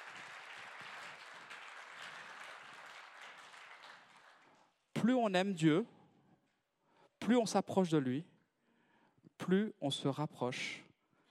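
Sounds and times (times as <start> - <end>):
crowd applauding: 0.0 - 4.7
speech: 5.0 - 6.0, 7.3 - 8.3, 9.5 - 10.8.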